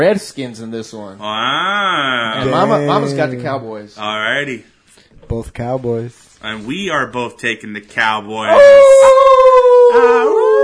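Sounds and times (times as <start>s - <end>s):
speech: 0.0s - 9.2s, 9.9s - 10.6s
person imitating a wolf howl: 2.4s - 3.6s, 8.5s - 10.6s.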